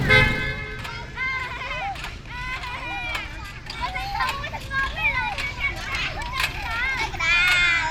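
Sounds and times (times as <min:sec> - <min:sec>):
car horn: 0:00.0 - 0:01.2
children shouting and chattering at a playground in Phnom Penh: 0:00.0 - 0:07.8
city traffic rumbling: 0:00.0 - 0:07.8.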